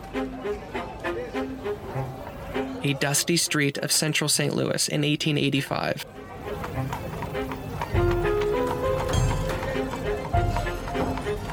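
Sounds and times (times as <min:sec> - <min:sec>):
street bustle: 0:00.0 - 0:11.5
speech: 0:00.1 - 0:02.2, 0:02.8 - 0:06.2
horses' hooves clip-clopping on a dusty street: 0:06.4 - 0:11.5.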